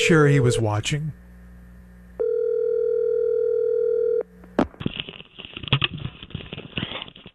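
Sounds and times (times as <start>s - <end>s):
speech: 0.0s - 1.2s
telephone dial tone while placing a call: 2.2s - 4.3s.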